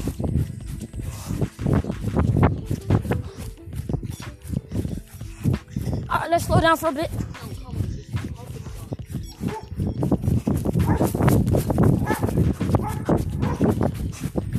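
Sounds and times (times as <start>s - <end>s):
hoof-like knocks and steps: 0.0s - 14.5s
speech: 6.3s - 7.2s
voices: 6.4s - 9.8s
dog making repeated sharp sounds: 10.8s - 11.2s, 12.0s - 13.7s.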